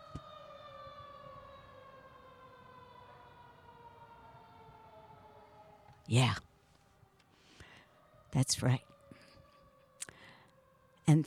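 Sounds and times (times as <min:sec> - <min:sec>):
siren wailing: 0:00.0 - 0:11.2
speech: 0:06.1 - 0:06.5, 0:08.4 - 0:08.9, 0:11.1 - 0:11.2.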